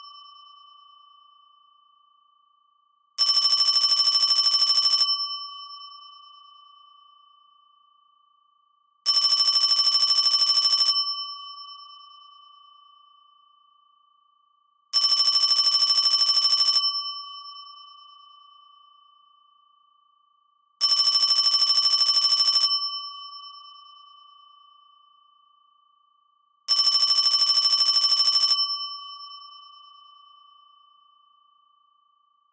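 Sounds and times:
electronic telephone ring imitating an antique bell: 0:03.2 - 0:05.5, 0:09.1 - 0:11.6, 0:15.0 - 0:17.4, 0:20.9 - 0:23.2, 0:26.7 - 0:29.2.

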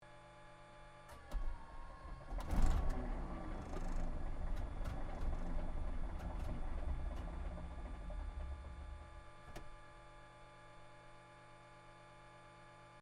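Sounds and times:
P-40 Kittyhawk aircraft engine misfire: 0:02.1 - 0:09.6.

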